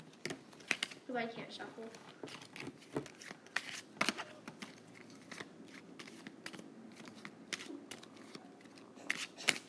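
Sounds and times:
speech: 1.1s - 3.2s
playing cards shuffling: 1.9s - 9.6s.

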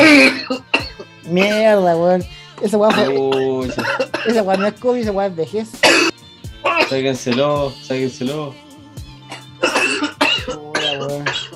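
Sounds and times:
harsh raspy coughing fit: 0.0s - 1.7s, 2.6s - 4.8s, 5.8s - 7.6s, 9.3s - 11.5s
speech: 1.3s - 6.1s, 6.7s - 8.6s.

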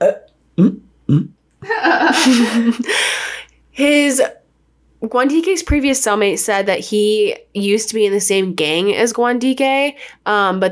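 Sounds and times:
loud rasping burp: 0.0s - 1.4s
speech: 0.0s - 3.2s, 3.8s - 4.4s, 5.0s - 10.7s
laughter: 1.6s - 3.0s.

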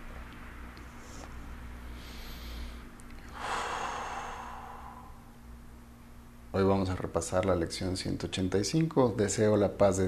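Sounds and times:
steady low hum: 0.0s - 10.0s
deep breath in through the nose and out through the mouth during a guided meditation: 1.0s - 5.3s
speech: 6.6s - 10.0s.

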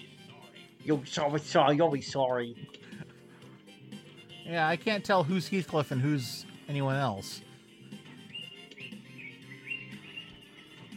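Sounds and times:
speech: 0.8s - 2.9s, 4.5s - 7.5s
birds chirping and singing: 4.5s - 10.9s.

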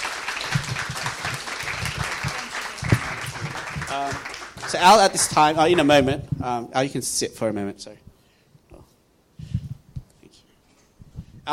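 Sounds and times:
crowd clapping in sustained audience applause: 0.0s - 6.0s
speech: 3.9s - 8.0s.

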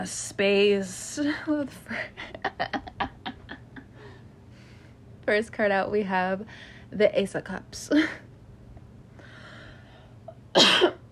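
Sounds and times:
speech: 0.0s - 2.9s, 5.3s - 8.2s
sharp harsh cough: 10.6s - 11.0s.

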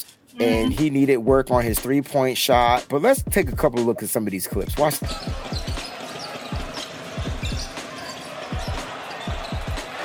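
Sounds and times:
speech: 0.0s - 5.7s
basketball dribbled on a court: 4.7s - 9.9s.

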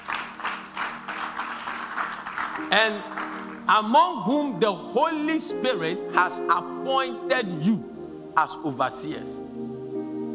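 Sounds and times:
audience clapping: 0.0s - 3.9s
speech: 2.7s - 9.4s.

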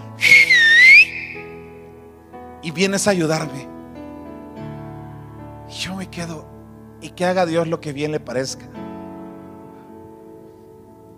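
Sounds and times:
sharp human whistle as a signal call for help: 0.1s - 1.7s
speech: 2.6s - 3.8s, 5.8s - 8.8s.

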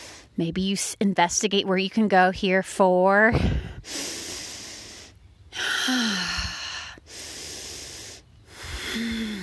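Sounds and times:
slow hissy breathing during a yoga pose: 0.0s - 0.4s, 3.6s - 9.4s
speech: 0.4s - 4.1s.

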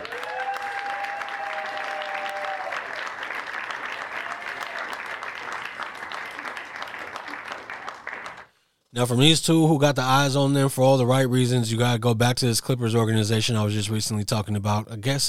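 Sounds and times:
loud applause from a crowd: 0.0s - 8.5s
speech: 9.0s - 15.2s.

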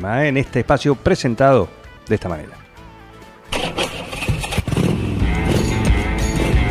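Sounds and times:
speech: 0.0s - 2.6s
motorcycle engine starting and revving: 3.5s - 6.6s.

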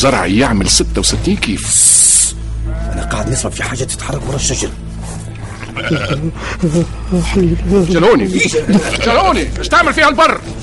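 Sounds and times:
speech: 0.0s - 2.4s, 3.0s - 4.8s, 5.8s - 10.6s
sheep bleating: 2.6s - 3.6s, 5.6s - 6.3s, 8.7s - 9.4s.

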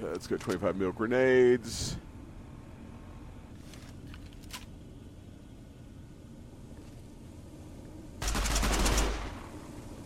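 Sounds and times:
speech: 0.0s - 2.0s
rapid automatic gunfire in a video game aimed at the player: 8.2s - 9.5s.

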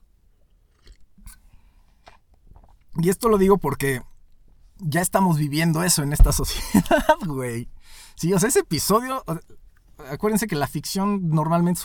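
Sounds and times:
person sipping and slurping coffee: 0.4s - 3.0s
speech: 3.0s - 4.1s, 4.8s - 11.8s
laughter: 6.5s - 7.3s.

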